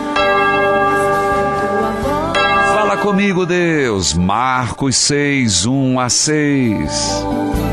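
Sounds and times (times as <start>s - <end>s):
church bell rung by the sacristan before Mass: 0.1s - 4.3s
speech: 3.1s - 7.7s.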